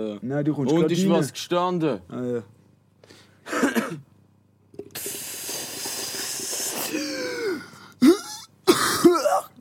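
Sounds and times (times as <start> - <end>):
speech: 0.0 - 3.2
person coughing into the microphone: 3.5 - 4.1, 6.8 - 9.6
throat clearing on the microphone: 6.9 - 9.6.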